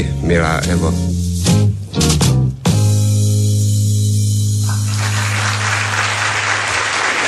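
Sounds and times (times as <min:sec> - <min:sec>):
speech: 0:00.0 - 0:01.2
brief burst of music: 0:00.0 - 0:07.1
audience applause: 0:04.6 - 0:07.2.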